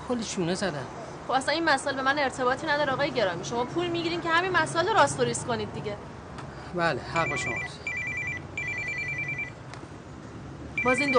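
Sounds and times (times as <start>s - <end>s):
speech: 0.1s - 6.1s, 6.7s - 7.9s, 10.8s - 11.1s
telephone ringing with a high electronic trill: 7.2s - 9.6s, 10.8s - 11.1s.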